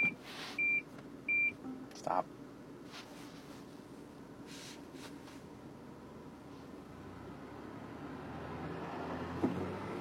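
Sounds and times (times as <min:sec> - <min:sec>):
car proximity warning beeps set off by a bus while driving: 0:00.0 - 0:01.8
low hum of road noise: 0:00.0 - 0:10.0
speech: 0:02.0 - 0:02.4.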